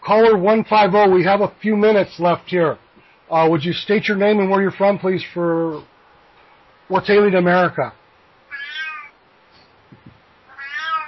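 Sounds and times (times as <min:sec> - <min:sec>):
speech: 0:00.1 - 0:05.9, 0:06.9 - 0:08.0
cat meowing in protest: 0:08.5 - 0:09.2, 0:10.5 - 0:11.0.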